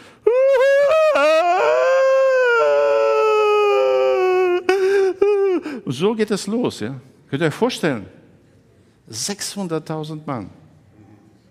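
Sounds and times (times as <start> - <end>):
voice imitating loud weeping and wailing: 0.2 - 6.0
speech: 5.9 - 8.2, 9.1 - 10.6.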